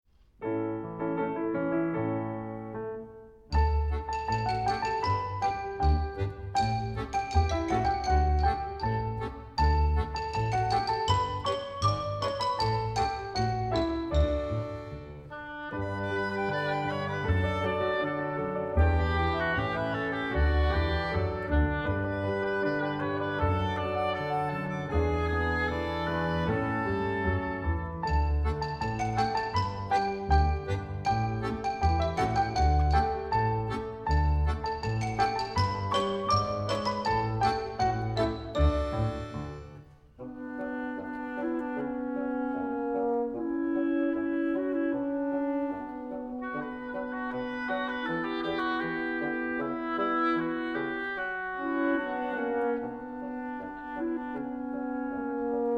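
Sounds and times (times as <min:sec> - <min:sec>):
orchestra alone playing: 0:01.0 - 0:55.7.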